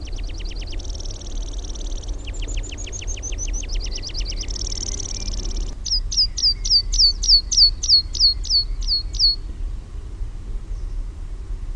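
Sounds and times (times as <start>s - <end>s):
meadow pipit song with buzzy trill and sharp descending notes: 0.0s - 9.4s
low steady rumble: 0.0s - 11.7s.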